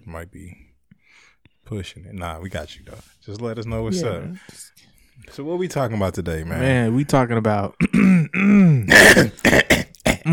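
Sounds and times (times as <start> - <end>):
speech: 0.1 - 9.6
person clearing throat: 7.8 - 10.3.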